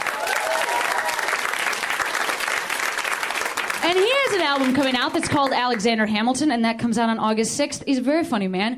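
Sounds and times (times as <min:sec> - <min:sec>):
audience applause: 0:00.0 - 0:06.1
speech: 0:03.8 - 0:08.7.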